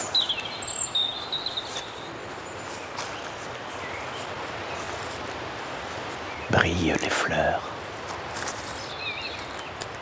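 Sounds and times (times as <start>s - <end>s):
birds chirping and whistling outdoors: 0.0s - 4.9s, 8.5s - 9.8s
steady outdoor hiss: 0.0s - 10.0s
speech: 6.6s - 7.7s.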